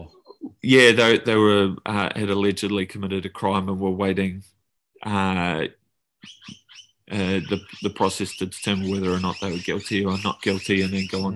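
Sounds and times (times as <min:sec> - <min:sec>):
speech: 0:00.6 - 0:11.3
birds calling outdoors: 0:06.2 - 0:11.3.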